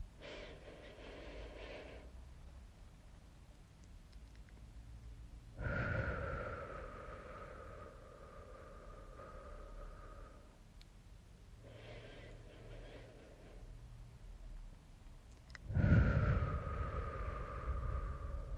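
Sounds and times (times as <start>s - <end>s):
deep breaths in and out during meditation: 0.0s - 2.3s, 5.4s - 10.8s, 11.5s - 14.2s, 15.5s - 18.5s.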